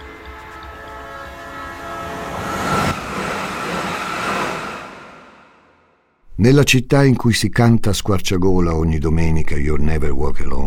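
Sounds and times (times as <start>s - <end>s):
train rumbling along the rails: 0.0s - 6.1s
speech: 6.4s - 10.6s.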